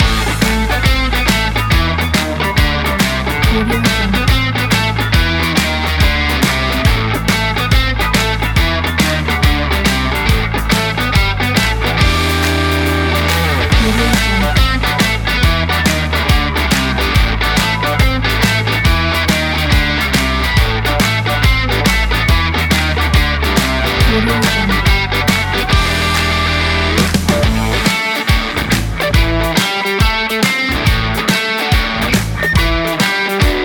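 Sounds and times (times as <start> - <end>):
energetic Texas blues funk loop: 0.0 - 33.6.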